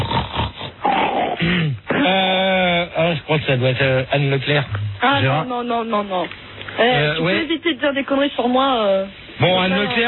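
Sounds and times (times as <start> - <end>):
loud sniffing and snorting: 0.0 - 2.2
speech: 3.2 - 10.0.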